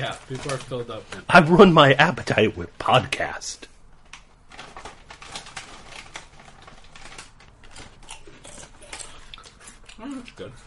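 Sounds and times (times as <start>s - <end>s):
speech: 0.0s - 3.7s, 10.0s - 10.6s
spicy corn chip being chewed: 4.5s - 10.6s.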